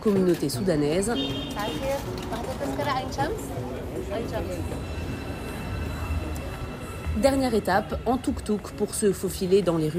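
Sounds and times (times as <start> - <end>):
speech: 0.0 - 5.1, 7.2 - 9.9
passengers chattering indistinctly in a metro car: 0.0 - 9.9
metro train rumbling in Cairo: 3.4 - 9.9.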